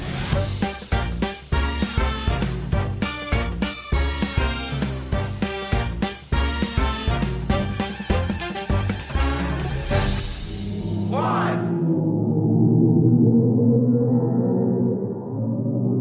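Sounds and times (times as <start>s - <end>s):
loud rhythmic music: 0.0s - 10.7s
sonified black hole pressure waves as deep ominous drone: 10.0s - 15.9s.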